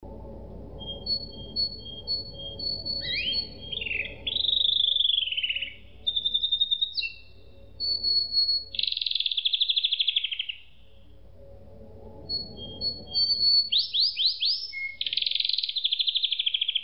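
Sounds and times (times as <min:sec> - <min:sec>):
low background rumble: 0:00.0 - 0:08.9, 0:10.6 - 0:15.1
canary singing long whistles, buzzy rolls and trills: 0:00.7 - 0:11.0, 0:12.3 - 0:16.8.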